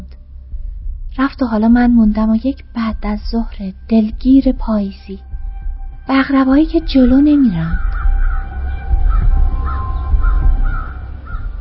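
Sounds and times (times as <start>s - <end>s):
low rumble of outdoor noise: 0.0s - 11.6s
speech: 1.2s - 5.3s, 6.1s - 7.9s
several crows cawing: 7.7s - 11.6s.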